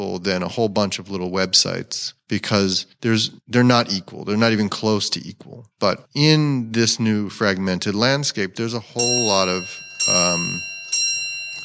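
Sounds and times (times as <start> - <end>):
speech: 0.0 - 10.7
clock chiming with rich ringing bell tones: 9.0 - 11.6.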